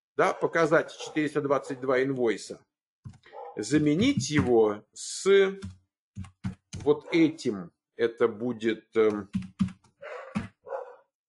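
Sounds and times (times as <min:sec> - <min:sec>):
dog barking: 0:00.2 - 0:01.9, 0:03.3 - 0:03.8, 0:06.9 - 0:07.4, 0:10.0 - 0:11.1
speech: 0:00.2 - 0:09.7.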